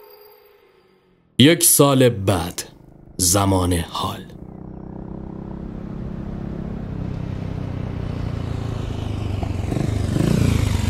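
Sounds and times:
speech: 0:01.4 - 0:04.4
motorcycle engine idling: 0:02.7 - 0:10.8.

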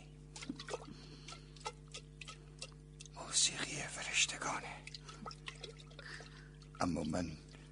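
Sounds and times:
water sloshing in a clay jug: 0:00.0 - 0:07.7
soft whispery background: 0:03.1 - 0:04.9
speech: 0:03.4 - 0:05.4, 0:06.8 - 0:07.4.

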